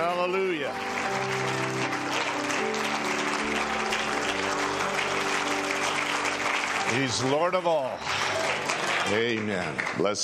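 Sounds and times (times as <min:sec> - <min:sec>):
large audience applause: 0:00.0 - 0:10.2
speech: 0:06.9 - 0:08.3, 0:09.1 - 0:10.2.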